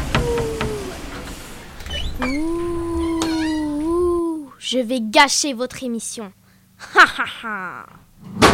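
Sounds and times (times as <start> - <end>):
person exclaiming: 0.2 - 1.1, 2.2 - 4.6, 6.8 - 8.0
speech: 4.7 - 8.4.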